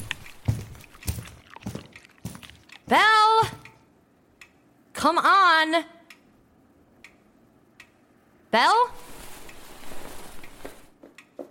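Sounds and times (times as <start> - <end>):
footsteps of a person walking around with soft scuffing: 0.0 - 2.8, 9.0 - 11.5
speech: 2.9 - 3.6, 5.0 - 6.0, 8.5 - 9.0.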